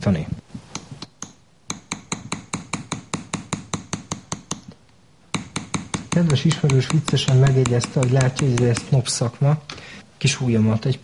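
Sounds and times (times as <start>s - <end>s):
speech: 0.0s - 0.4s, 6.2s - 11.0s
small hammer tapping a metal acanthus leaf ornament: 0.8s - 9.0s.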